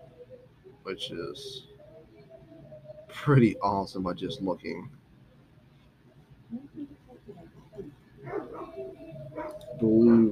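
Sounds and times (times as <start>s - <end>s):
speech: 0.8s - 1.7s, 3.1s - 5.0s, 8.8s - 10.3s
dog barking: 8.2s - 9.7s.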